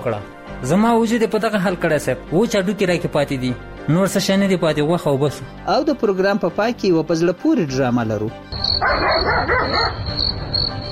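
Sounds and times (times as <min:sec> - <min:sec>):
speech: 0:00.0 - 0:10.9
dogs barking: 0:08.6 - 0:10.2
high-pitched insect drone: 0:10.1 - 0:10.9.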